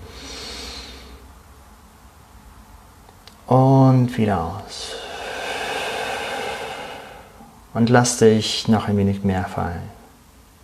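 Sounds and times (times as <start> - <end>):
long airy inhale through the nose: 0.0 - 1.2, 4.8 - 7.5
speech: 3.5 - 5.0, 7.7 - 10.0.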